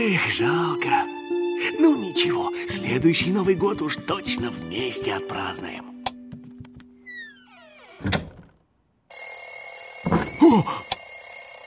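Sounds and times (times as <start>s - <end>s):
speech: 0.0s - 5.9s, 10.4s - 10.9s
alarm clock ringing with a metallic clatter: 9.1s - 11.6s.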